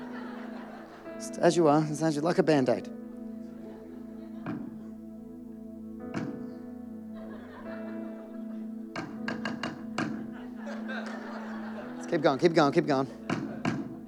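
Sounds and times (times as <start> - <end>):
laughter: 0.0 - 2.2, 3.4 - 5.2, 7.1 - 14.0
speech: 1.2 - 3.0, 12.2 - 13.2
hammer striking nails: 6.1 - 6.4, 9.0 - 10.3, 13.3 - 14.0.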